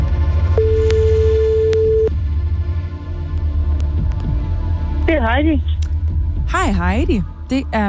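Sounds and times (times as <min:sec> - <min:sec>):
constant low throbbing hum: 0:00.0 - 0:07.5
telephone ringback tone while placing a call: 0:00.6 - 0:02.1
speech: 0:05.3 - 0:05.7, 0:06.7 - 0:07.8.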